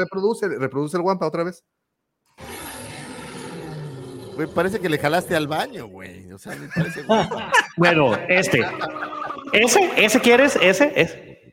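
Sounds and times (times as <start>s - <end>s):
speech: 0.0s - 1.8s, 4.4s - 11.3s
loud sustained creature roar with rough growling bellow: 2.4s - 6.1s
laughter: 4.4s - 11.1s.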